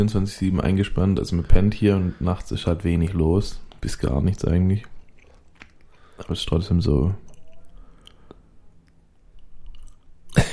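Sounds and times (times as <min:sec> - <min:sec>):
speech: 0:00.0 - 0:04.9, 0:06.2 - 0:07.2
chewing and lip-smacking while eating: 0:04.8 - 0:06.3, 0:07.2 - 0:10.4.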